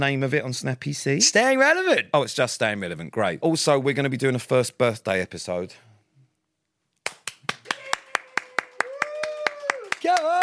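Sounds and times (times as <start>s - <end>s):
speech: 0.0s - 5.9s
lone person clapping: 7.0s - 10.4s.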